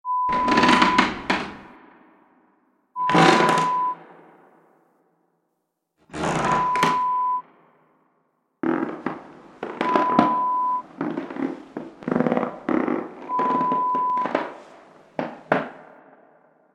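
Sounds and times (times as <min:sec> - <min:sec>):
creaking: 0:00.3 - 0:01.7, 0:03.0 - 0:04.0, 0:06.1 - 0:07.3, 0:08.6 - 0:15.9.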